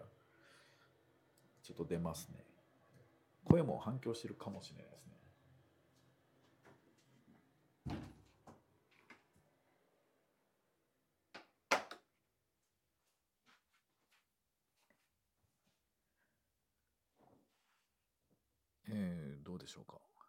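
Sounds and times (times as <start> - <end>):
speech: 1.7 - 2.6, 3.5 - 5.2, 19.7 - 20.2
door closing thuds: 7.9 - 8.2.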